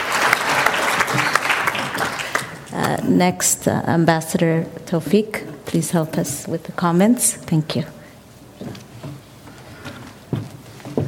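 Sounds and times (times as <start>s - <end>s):
audience applause: 0.0s - 2.7s
speech: 3.1s - 8.0s.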